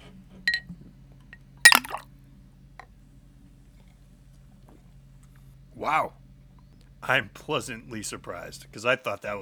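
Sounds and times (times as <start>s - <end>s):
Jaeger shot dropping into Monster energy drink: 1.7s - 2.0s
glasses clinking in a toast: 1.7s - 2.0s
speech: 5.8s - 6.2s, 7.1s - 9.4s.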